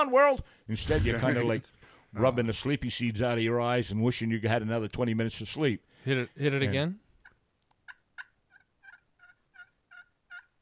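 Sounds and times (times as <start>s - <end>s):
speech: 0.0s - 7.0s
wild tom turkey yelping on a crisp morning: 7.8s - 10.5s.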